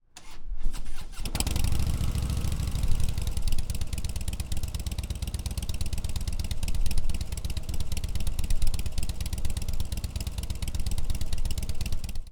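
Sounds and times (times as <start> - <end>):
Softail 103 with Rinehart 2-into-1 exhaust system idling: 1.2 - 12.3.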